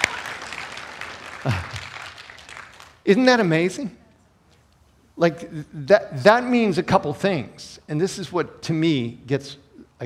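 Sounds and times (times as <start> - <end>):
person cheering: 0.0 - 0.5, 1.4 - 2.0
congregation clapping during a church service: 0.0 - 3.1
speech: 1.4 - 1.6, 3.1 - 4.0, 5.2 - 10.0.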